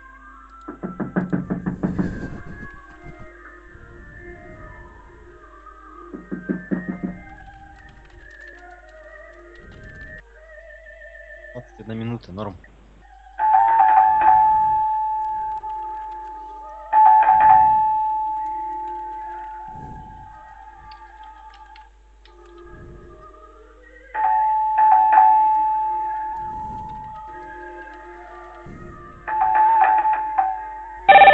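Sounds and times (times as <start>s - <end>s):
speech: 11.9s - 12.7s
telephone ringing with a steady electronic tone: 13.4s - 20.4s, 24.2s - 28.5s, 29.2s - 31.3s.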